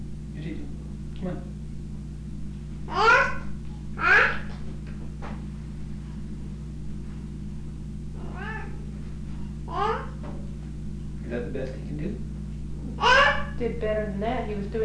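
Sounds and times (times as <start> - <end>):
steady low hum: 0.0 - 14.8
speech: 0.4 - 1.6, 13.6 - 14.8
cat meowing: 8.2 - 8.8.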